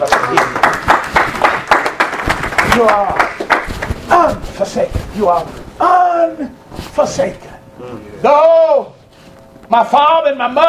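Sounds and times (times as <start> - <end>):
speech: 0.0 - 0.6, 2.8 - 3.3, 4.1 - 9.0, 9.7 - 10.6
crowd clapping hands as praise to God: 0.0 - 4.0.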